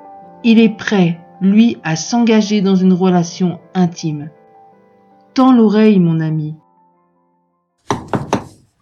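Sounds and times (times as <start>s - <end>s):
speech: 0.4s - 4.4s, 5.4s - 6.6s
firm knocking on a door: 7.9s - 8.6s.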